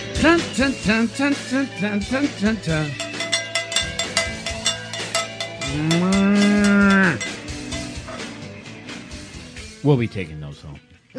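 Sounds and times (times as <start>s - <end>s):
speech: 0.2s - 3.0s, 5.7s - 7.2s, 9.8s - 11.1s
cowbells clanking and jangling: 1.7s - 8.4s
cow mooing: 5.6s - 8.3s.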